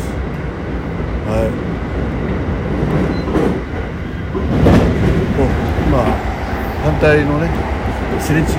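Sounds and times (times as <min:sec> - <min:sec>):
train crossing a long steel railway bridge over a river: 0:00.0 - 0:08.5
speech: 0:07.0 - 0:08.5.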